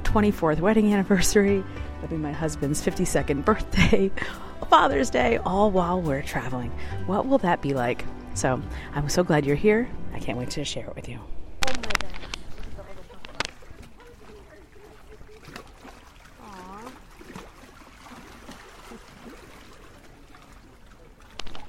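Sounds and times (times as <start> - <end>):
speech: 0.1 - 12.0
small waves lapping against the shore at Tribunji after sunset: 11.7 - 21.6.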